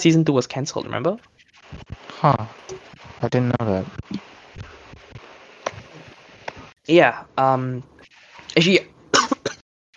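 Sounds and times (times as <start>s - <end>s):
speech: 0.0s - 4.2s, 6.9s - 7.9s, 8.6s - 8.9s
person coughing after choking on water: 9.1s - 9.6s.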